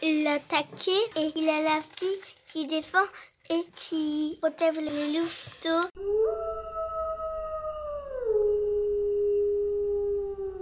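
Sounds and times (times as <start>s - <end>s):
speech: 0.3s - 6.7s
wolves howling together: 6.0s - 10.5s.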